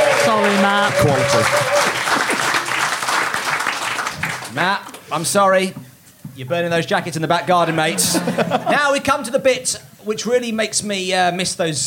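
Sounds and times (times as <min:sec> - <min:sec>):
audience applause: 0:00.0 - 0:04.6
speech: 0:00.4 - 0:02.4, 0:04.6 - 0:05.8, 0:06.4 - 0:11.8
laughter: 0:07.6 - 0:09.0.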